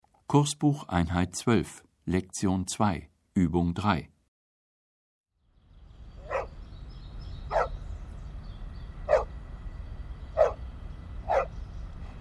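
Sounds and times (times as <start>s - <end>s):
speech: 0.3s - 4.1s
steady low rumble: 5.4s - 12.1s
dog barking: 6.2s - 6.6s, 7.5s - 7.8s, 9.1s - 9.3s, 10.4s - 10.6s, 11.2s - 11.6s.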